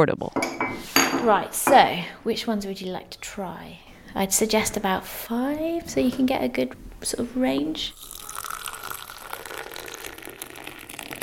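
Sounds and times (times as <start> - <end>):
speech: 0.0 - 8.2
tea being poured into cups: 7.7 - 11.2.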